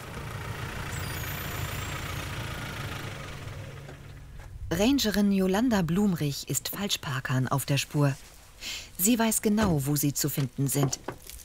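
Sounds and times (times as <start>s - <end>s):
ranger's car engine running while driving onto a river dike: 0.0s - 5.0s
speech: 4.7s - 11.2s.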